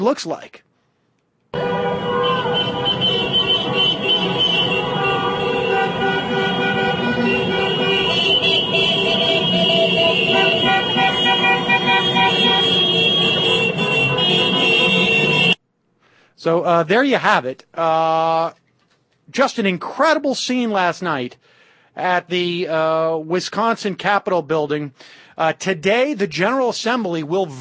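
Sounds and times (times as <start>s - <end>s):
speech: 0.0s - 0.7s, 16.4s - 18.6s, 19.3s - 27.5s
cars driving by on a street: 1.6s - 15.6s
crowd-like hubbub: 2.9s - 15.4s.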